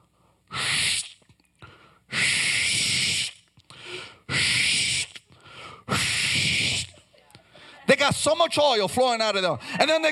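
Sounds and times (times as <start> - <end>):
voice imitating sneezes with hissing sneeze-like bursts: 0.5 - 1.2, 2.1 - 3.4, 4.3 - 5.3, 5.9 - 7.1
speech: 8.1 - 10.1.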